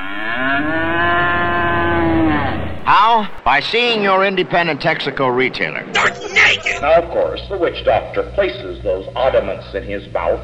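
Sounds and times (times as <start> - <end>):
cow mooing: 0.0 - 2.9
speech: 2.9 - 10.4.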